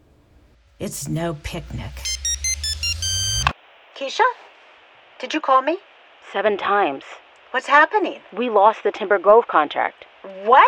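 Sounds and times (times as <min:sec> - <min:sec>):
speech: 0:00.8 - 0:02.1, 0:04.0 - 0:04.4, 0:05.2 - 0:10.6
electronic alarm clock ringing: 0:00.8 - 0:03.5.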